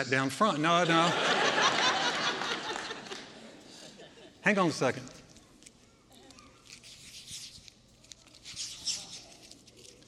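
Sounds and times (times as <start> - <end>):
speech: 0.0 - 1.9, 4.4 - 5.2
laughter: 0.5 - 4.4
paper banknote crumpled in sweaty hands: 5.1 - 10.0.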